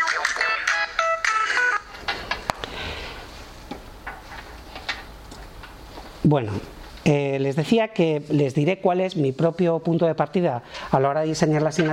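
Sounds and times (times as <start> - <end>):
phone ringtone with a bright electronic melody: 0.0 - 1.9
speech: 6.3 - 11.9.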